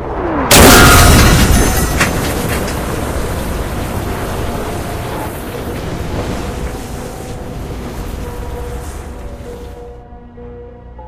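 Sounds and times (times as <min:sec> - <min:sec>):
loud explosion: 0:00.5 - 0:09.2.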